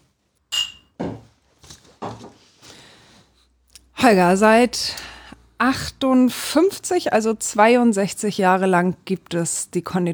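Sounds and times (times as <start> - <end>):
glasses clinking in a toast: 0.5 - 1.0
glasses knocking and thudding as handled and set down: 0.5 - 1.3
speech: 4.0 - 10.1.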